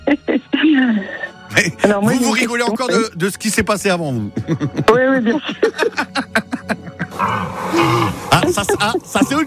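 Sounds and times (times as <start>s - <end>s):
speech: 0.8s - 6.5s, 7.2s - 9.4s
laughter: 4.2s - 9.4s
stag deer bellowing with deep grunting pulses and harsh roar: 7.1s - 8.3s.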